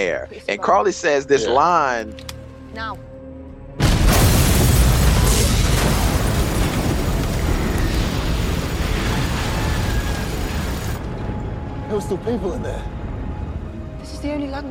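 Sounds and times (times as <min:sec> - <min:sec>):
speech: 0:00.0 - 0:03.1, 0:11.9 - 0:13.0, 0:14.2 - 0:14.7
loud explosion: 0:03.8 - 0:11.6
heavy roaring rumble and debris noise: 0:03.8 - 0:14.7.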